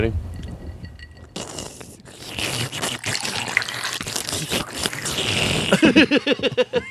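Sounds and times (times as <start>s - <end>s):
speech: 0.0s - 0.2s, 5.8s - 6.8s
drink being poured into a vessel: 0.9s - 5.7s
laughter: 5.7s - 6.8s.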